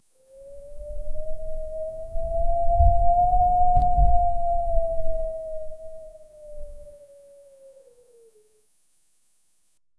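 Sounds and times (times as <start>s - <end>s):
blustery winds whistling: 0.4s - 7.0s.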